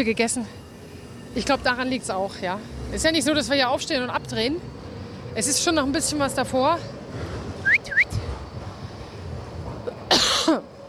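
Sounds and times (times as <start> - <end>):
speech: 0.0 - 0.7, 1.3 - 7.3
loud cough directly into the microphone: 10.1 - 10.7.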